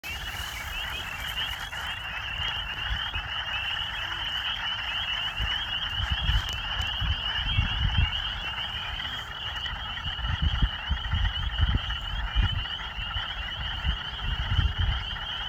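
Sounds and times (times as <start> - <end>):
frog calling: 0.0 - 15.4.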